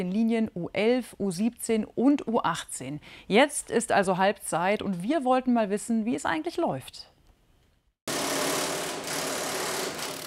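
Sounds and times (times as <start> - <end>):
speech: 0.0 - 7.1
power drill or screwdriver whirring in construction work: 8.1 - 10.2.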